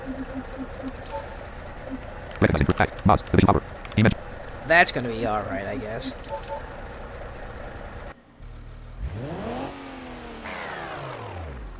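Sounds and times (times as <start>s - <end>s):
truck gears grinding while shifting: 0.0s - 8.2s
truck engine revving: 0.0s - 11.7s
speech: 2.4s - 6.5s.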